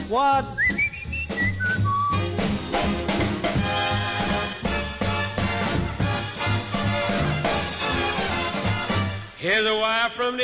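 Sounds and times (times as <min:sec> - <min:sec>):
loud steady band accompaniment: 0:00.0 - 0:09.4
speech: 0:00.1 - 0:00.8, 0:09.4 - 0:10.4
man whistling like a bird with trills: 0:00.5 - 0:02.3.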